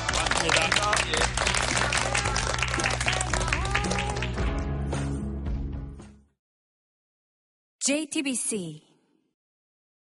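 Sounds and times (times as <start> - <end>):
large audience applauding: 0.0 - 4.8
speech: 7.9 - 8.9.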